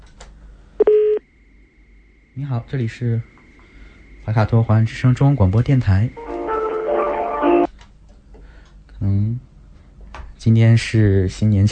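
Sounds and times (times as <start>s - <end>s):
faint lingering hum: 0.0s - 11.7s
radio phone hotline call connecting tone: 0.8s - 7.7s
speech: 2.4s - 3.3s, 4.3s - 6.3s, 10.4s - 11.7s.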